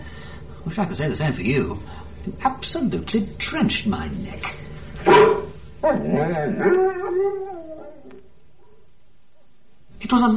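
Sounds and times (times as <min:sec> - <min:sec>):
speech: 0:00.6 - 0:07.6, 0:10.1 - 0:10.3
big sheepdog-type dog barking in the back of a car: 0:05.0 - 0:06.9
big sheepdog-type dog wavering vocal grumbles and howl-like moans: 0:05.0 - 0:08.3.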